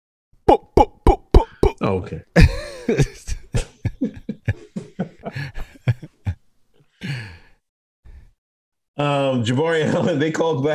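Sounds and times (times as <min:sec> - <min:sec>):
voice imitating Jamaican-style gunshots: 0:00.5 - 0:01.8
speech: 0:01.9 - 0:03.3, 0:09.0 - 0:10.7
laughter: 0:02.4 - 0:06.4.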